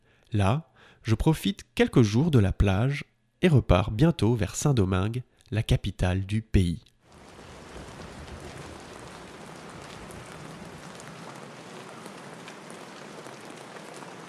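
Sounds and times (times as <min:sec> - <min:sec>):
speech: 0:00.3 - 0:06.9
steady rain pouring: 0:07.1 - 0:14.2.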